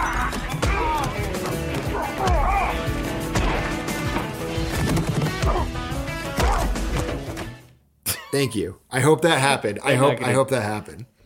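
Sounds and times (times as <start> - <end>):
shouts and grunts: 0.0 - 2.9
loud meaty movie-style punch impacts: 3.2 - 7.6
speech: 8.4 - 11.1.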